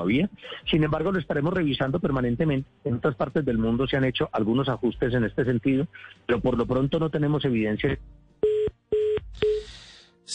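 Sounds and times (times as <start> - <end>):
speech: 0.0 - 8.6
phone line disconnect tone beeps: 8.4 - 9.6.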